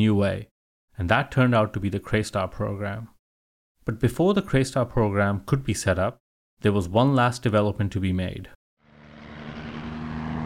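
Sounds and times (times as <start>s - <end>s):
speech: 0.0s - 3.1s, 3.9s - 8.6s
helicopter engine drone and rotor hum at Bougainville: 8.8s - 10.4s.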